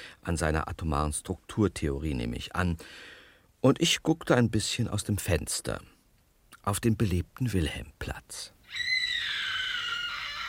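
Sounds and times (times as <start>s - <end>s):
speech: 0.2s - 5.9s, 6.6s - 9.4s
sustained high-pitched scream: 8.7s - 10.4s.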